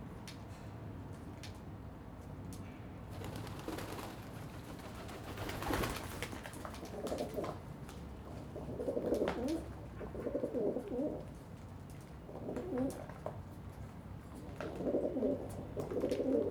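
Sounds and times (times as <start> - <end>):
pigeons fighting with clattering wing beats: 3.1 - 7.6
pigeons cooing on a balcony: 8.5 - 11.3, 12.3 - 13.2, 14.5 - 16.4.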